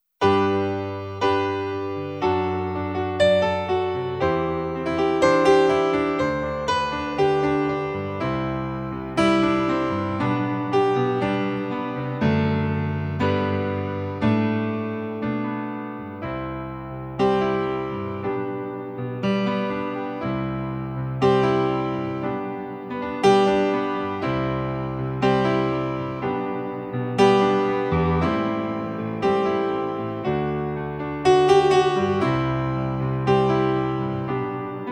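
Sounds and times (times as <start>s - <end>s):
music in G major at 60 BPM: 0.0s - 34.8s.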